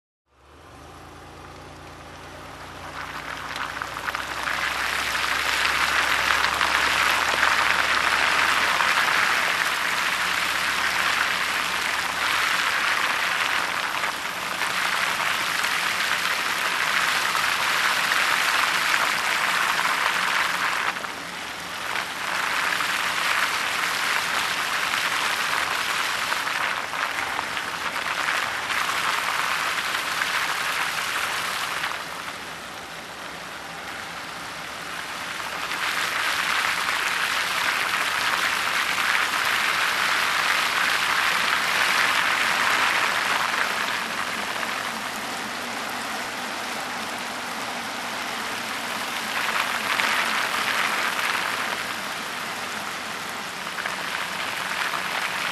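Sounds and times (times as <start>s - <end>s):
car driving slowly on wet dirt: 0.3s - 55.4s.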